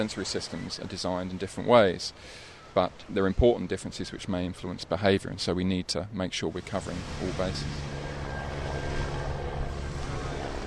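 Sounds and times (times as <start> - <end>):
speech: 0.0 - 8.0
helicopter engine and rotor droning overhead: 6.6 - 10.6.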